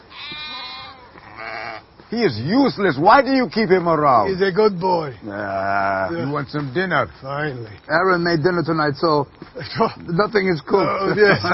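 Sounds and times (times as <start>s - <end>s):
sheep bleating: 0.0s - 1.9s
speech: 1.4s - 11.5s
laughter: 10.7s - 11.5s.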